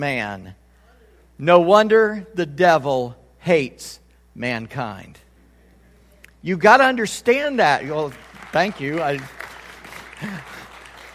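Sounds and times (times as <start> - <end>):
speech: 0.0 - 0.6, 1.4 - 5.2, 6.4 - 9.4, 10.2 - 10.6
crowd applauding: 7.9 - 11.1.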